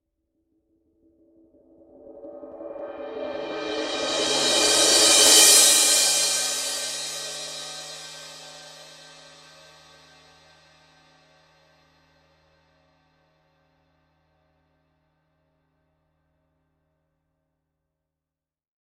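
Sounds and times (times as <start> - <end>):
Paiste 2002 20 power crash cymbal roll: 2.3 - 10.0.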